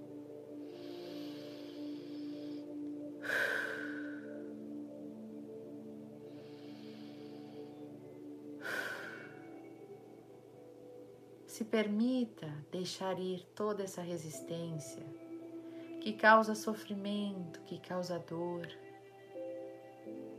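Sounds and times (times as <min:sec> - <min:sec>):
soft steady ambient drone: 0:00.0 - 0:20.3
deep slow breathing: 0:00.4 - 0:04.8, 0:06.1 - 0:10.9
speech: 0:11.6 - 0:15.2, 0:16.0 - 0:18.8.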